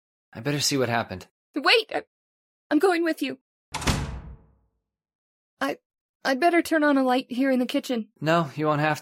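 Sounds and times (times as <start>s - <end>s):
speech: 0.4s - 2.1s, 2.7s - 3.9s, 5.6s - 8.9s
unlatched back door banging in the wind: 3.7s - 4.6s.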